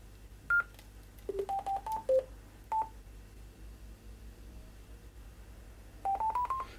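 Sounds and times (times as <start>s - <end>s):
DTMF tones from a microphone keypad: 1.3s - 2.9s, 6.1s - 6.7s.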